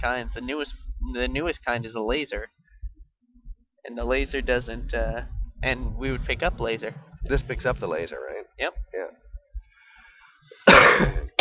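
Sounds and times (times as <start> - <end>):
speech: 0.0 - 2.6, 3.8 - 9.2
faint thumps: 0.0 - 11.4
loud harsh cough: 10.6 - 11.4.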